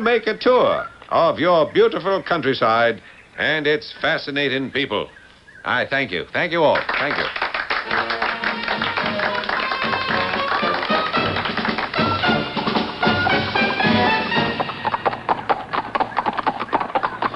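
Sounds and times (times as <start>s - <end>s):
speech: 0.0s - 8.2s
horse hooves clip-clopping while pulling a buggy onto a turnpike: 8.8s - 17.3s.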